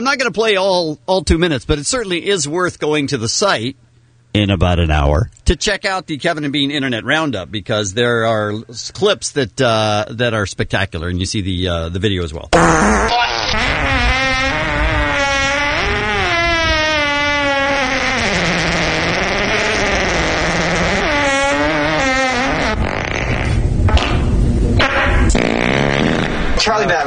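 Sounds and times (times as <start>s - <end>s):
speech: 0.0s - 14.2s
loud drawn-out fart from a movie clip: 12.5s - 26.7s.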